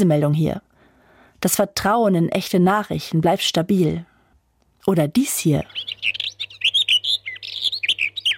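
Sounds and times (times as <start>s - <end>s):
speech: 0.0s - 0.7s, 1.4s - 4.1s, 4.8s - 6.2s
birds chirping and singing in quick high tweets and trills: 5.6s - 8.3s.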